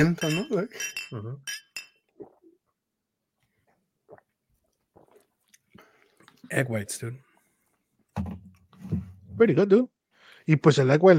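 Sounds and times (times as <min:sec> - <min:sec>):
glasses clinking in a toast: 0:00.0 - 0:02.1
speech: 0:00.0 - 0:02.3, 0:06.5 - 0:07.2, 0:08.2 - 0:09.9, 0:10.5 - 0:11.1
sipping and swallowing: 0:02.0 - 0:06.7.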